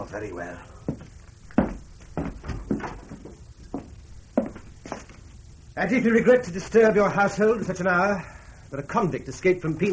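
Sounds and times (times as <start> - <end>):
speech: 0.0 - 0.8, 5.8 - 9.9
sharp wooden knocks and clatters: 1.6 - 5.2.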